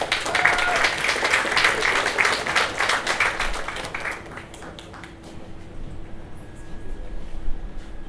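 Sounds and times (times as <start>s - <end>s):
audience applause: 0.0s - 5.5s.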